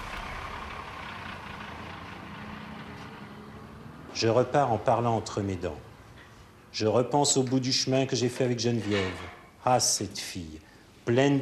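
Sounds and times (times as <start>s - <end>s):
bus engine starting at a bus stop and pulling away: 0.0s - 6.6s
speech: 4.2s - 5.9s, 6.8s - 11.4s.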